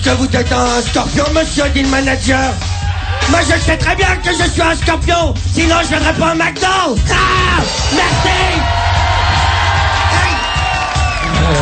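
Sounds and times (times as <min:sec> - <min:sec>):
speech: 0:00.1 - 0:08.9
large audience cheering with shrill whoops: 0:02.6 - 0:04.3, 0:07.5 - 0:11.6
large audience applauding: 0:07.9 - 0:11.6
whistles from the audience: 0:10.2 - 0:11.4.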